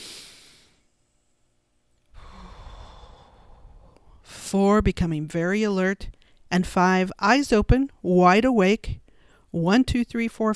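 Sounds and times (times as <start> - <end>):
deep breath during a guided relaxation session: 0.0 - 0.8, 2.1 - 4.4, 9.1 - 9.5
speech: 4.5 - 10.5.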